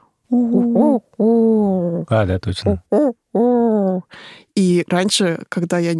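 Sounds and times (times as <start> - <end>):
human voice imitating a common wood pigeon's hooting call: 0.3 - 4.1
speech: 0.3 - 5.9.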